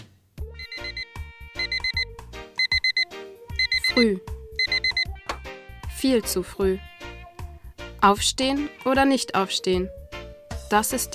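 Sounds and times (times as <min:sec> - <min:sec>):
bright electronic alarm clock tone: 0:00.6 - 0:05.1
speech: 0:04.0 - 0:04.3, 0:06.0 - 0:06.9, 0:08.0 - 0:10.0, 0:10.7 - 0:11.1.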